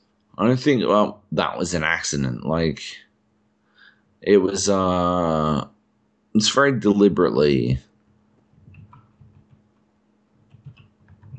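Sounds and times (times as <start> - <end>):
low steady hum: 0.0 - 11.3
speech: 0.4 - 3.0, 4.2 - 5.7, 6.4 - 7.9
typing on a computer keyboard: 8.6 - 9.6, 10.4 - 11.3.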